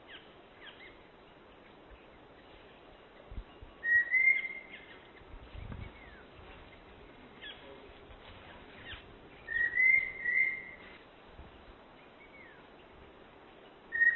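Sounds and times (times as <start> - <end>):
steady hiss: 0.0 - 14.1
long-billed thrush whistling: 3.8 - 4.7, 9.5 - 10.8, 13.9 - 14.1.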